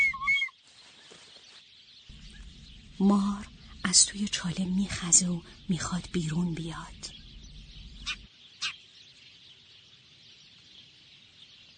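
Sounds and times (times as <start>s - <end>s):
sparrows chirping: 0.0s - 11.7s
low rumble: 2.1s - 8.3s
speech: 3.0s - 7.2s.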